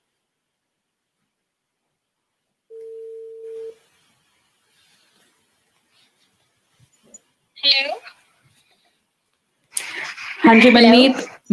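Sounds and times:
telephone dialing tone as a call is placed: 2.7s - 3.8s
speech: 10.5s - 11.5s.

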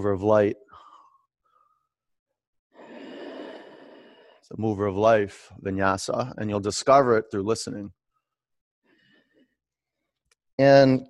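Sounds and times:
speech: 0.0s - 0.6s, 4.5s - 8.0s, 10.6s - 11.0s
Ujjayi breathing during yoga: 2.8s - 4.5s.

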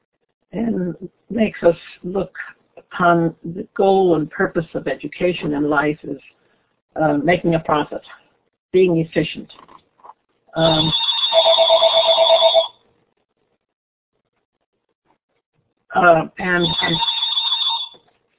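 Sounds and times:
speech: 0.5s - 9.8s, 10.6s - 11.1s, 15.9s - 17.2s
mobile phone ringing with electronic ringtone: 10.6s - 12.8s, 16.6s - 18.0s.

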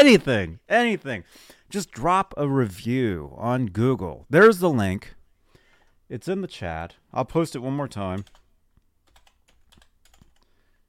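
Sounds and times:
speech: 0.0s - 5.2s, 6.1s - 8.4s
typing on a computer keyboard: 8.1s - 10.5s.

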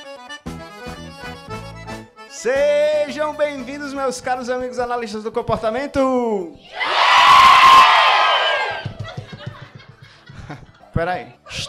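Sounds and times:
speech: 2.4s - 6.9s, 11.0s - 11.6s
large audience jeering boo: 6.7s - 8.9s
laughter: 8.7s - 11.0s.

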